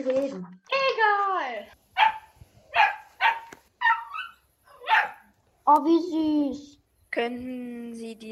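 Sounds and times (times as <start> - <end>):
speech: 0.0 - 1.1, 5.7 - 8.3
puppy yapping over a phone line: 2.0 - 5.3.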